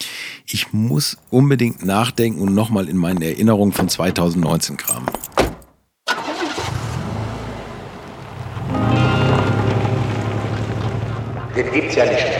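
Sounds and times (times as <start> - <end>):
speech: 0.0 - 5.4, 11.6 - 12.3
car engine starting, rumbling and revving as the car pulls away: 6.1 - 12.0.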